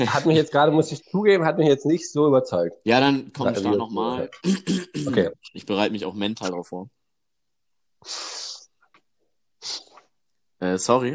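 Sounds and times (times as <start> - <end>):
speech: 0.0 - 7.0, 8.0 - 8.4, 9.6 - 9.8, 10.6 - 11.1
faint snuffles: 8.0 - 8.7, 9.6 - 10.1
wet sniffs through a runny nose: 8.0 - 8.8, 9.6 - 10.1.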